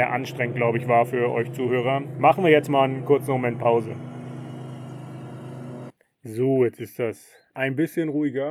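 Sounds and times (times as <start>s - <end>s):
speech: 0.0s - 4.1s, 6.2s - 8.4s
ride-on lawnmower engine droning: 0.0s - 5.9s.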